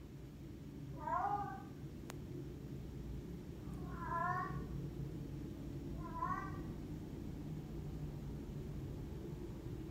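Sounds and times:
steady low rumble: 0:00.0 - 0:09.9
female cat in heat yowling: 0:01.0 - 0:01.7, 0:03.8 - 0:04.7, 0:06.0 - 0:06.7.

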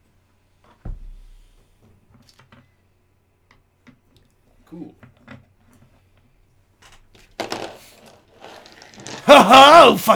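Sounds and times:
speech: 0:04.7 - 0:05.2, 0:09.3 - 0:10.1
ten-sided die clattering and tumbling across a hard tabletop: 0:06.9 - 0:09.8
laughter: 0:09.2 - 0:10.1.

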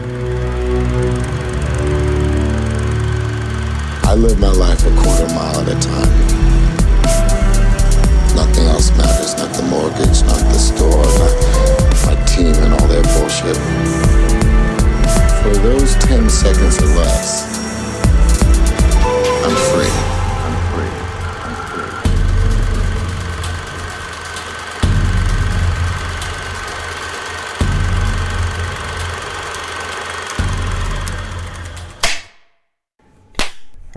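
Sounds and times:
engine exhaust rumbling at idle: 0:00.0 - 0:32.0
speech: 0:04.2 - 0:06.5, 0:08.6 - 0:14.2, 0:15.4 - 0:17.6.

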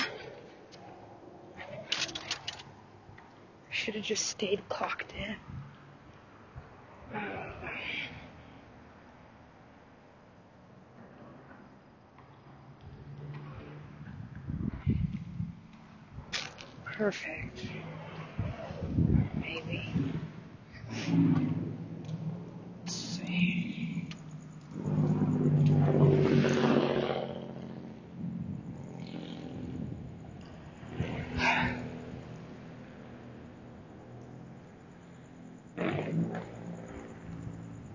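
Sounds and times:
quieter passing traffic: 0:00.0 - 0:37.9
speech: 0:03.9 - 0:05.6, 0:17.0 - 0:17.5
loud raspy car engine without muffler passing: 0:17.2 - 0:37.9.

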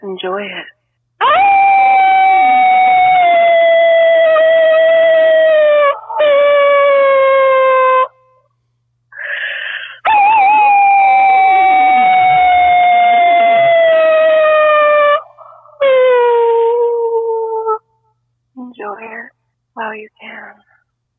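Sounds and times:
speech: 0:00.1 - 0:01.4
human voice imitating a wolf howl: 0:01.2 - 0:08.2, 0:10.0 - 0:17.9.

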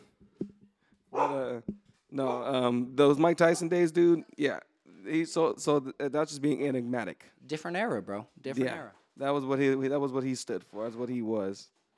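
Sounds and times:
dog barking: 0:01.2 - 0:01.5, 0:02.2 - 0:02.6
speech: 0:01.3 - 0:11.8.

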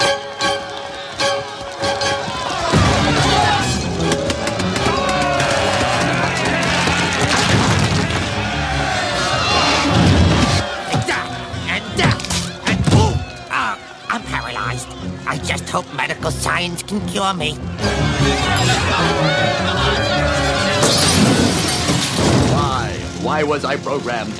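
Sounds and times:
crowd shouting and cheering: 0:00.0 - 0:24.3
heavy objects smashing: 0:02.7 - 0:08.6, 0:20.7 - 0:23.2
speech: 0:16.6 - 0:20.2, 0:23.2 - 0:24.3.

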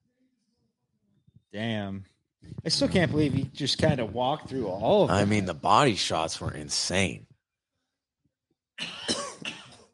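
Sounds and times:
speech: 0:01.5 - 0:07.3
harsh raspy cough: 0:08.8 - 0:09.9.

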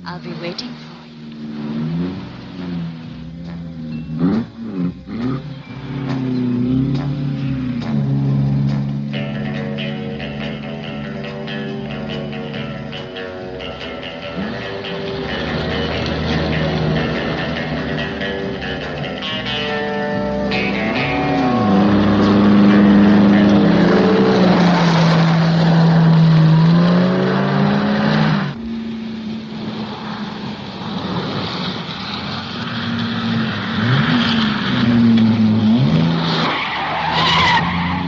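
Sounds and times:
car engine revving in a car chase scene from a low-budget spy film: 0:00.0 - 0:38.0.

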